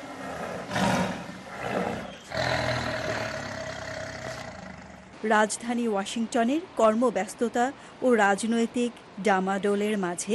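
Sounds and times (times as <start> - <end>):
tiger roaring in a wildlife sanctuary: 0.0 - 5.2
speech: 5.2 - 10.3.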